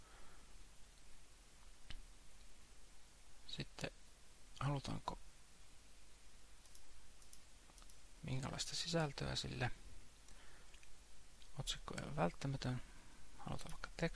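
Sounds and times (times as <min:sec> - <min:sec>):
speech: 0:03.6 - 0:04.0, 0:04.6 - 0:05.2, 0:08.2 - 0:09.8, 0:11.6 - 0:14.1
computer mouse clicks: 0:06.6 - 0:08.0.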